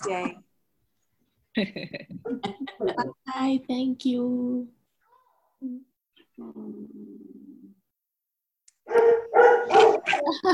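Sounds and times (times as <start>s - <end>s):
speech: 0.0s - 0.5s, 1.6s - 4.8s, 5.6s - 7.4s, 8.9s - 10.5s
puppy barking: 8.9s - 10.4s.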